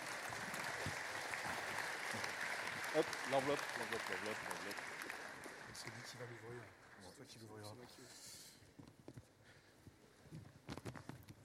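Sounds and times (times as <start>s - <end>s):
audience applauding at a European prize ceremony: 0.0s - 7.1s
speech: 3.0s - 5.0s, 5.8s - 8.4s.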